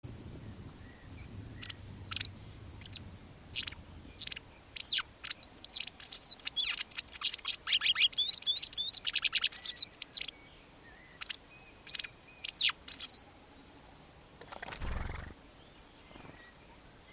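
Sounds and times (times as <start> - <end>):
white wagtail giving sharp high chirping calls: 0.8 - 10.4, 11.0 - 13.2.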